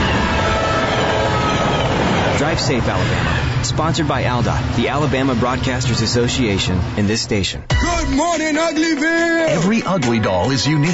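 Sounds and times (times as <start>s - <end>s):
train cars rumbling and rattling on the rails: 0.0s - 7.0s
speech: 2.5s - 10.9s.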